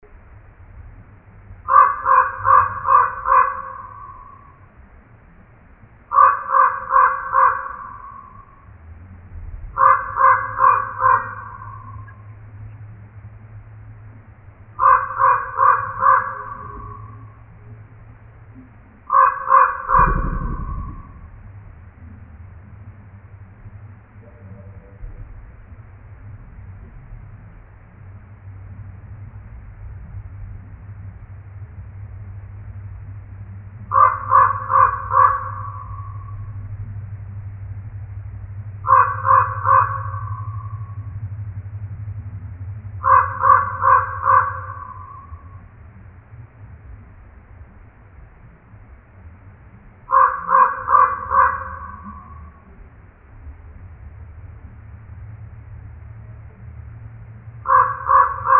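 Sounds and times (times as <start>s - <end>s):
common raven calling: 1.6s - 4.8s, 6.0s - 8.8s, 9.6s - 12.8s, 14.6s - 22.2s, 33.8s - 36.8s, 38.7s - 41.4s, 42.8s - 45.8s, 50.0s - 53.0s, 57.6s - 58.5s.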